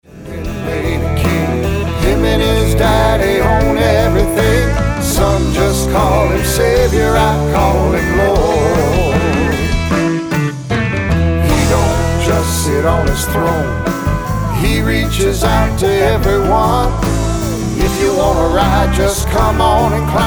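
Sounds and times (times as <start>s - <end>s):
song: 0.0s - 20.2s.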